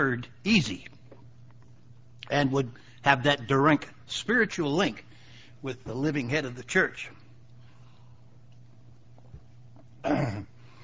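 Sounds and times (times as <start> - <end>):
speech: 0.0 - 0.9, 2.3 - 7.2, 10.0 - 10.5
short throaty cough or throat-clearing: 10.0 - 10.6.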